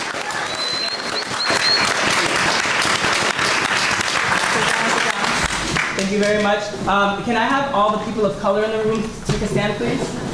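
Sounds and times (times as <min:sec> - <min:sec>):
crowd applauding: 0:00.0 - 0:06.5
faint whistle: 0:00.3 - 0:02.0
speech: 0:06.1 - 0:10.2.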